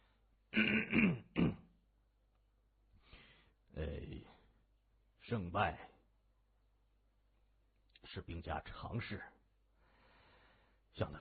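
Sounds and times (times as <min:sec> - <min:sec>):
man clearing his throat: 0:00.5 - 0:01.8
man giving a harsh dry cough: 0:00.5 - 0:01.8
speech: 0:05.3 - 0:05.9, 0:08.1 - 0:09.4, 0:11.0 - 0:11.2.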